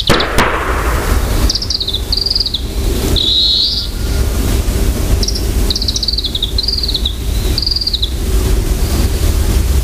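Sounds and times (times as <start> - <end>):
varied tit calling: 0.1 - 3.9
sharp noise: 0.1 - 4.3
constant low rumble: 0.1 - 9.8.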